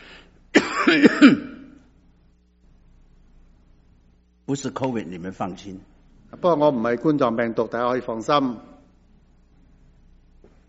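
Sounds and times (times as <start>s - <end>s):
harsh rough coughs: 0.5s - 1.8s
speech: 0.9s - 1.5s, 4.5s - 8.7s.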